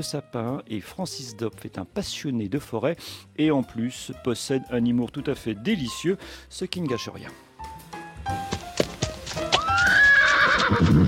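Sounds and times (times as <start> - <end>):
speech: 0.0 - 7.5
horse hooves clopping in the Haut-Rhin, France: 8.3 - 11.0
horse neighing in the Haut-Rhin, France: 9.5 - 11.0.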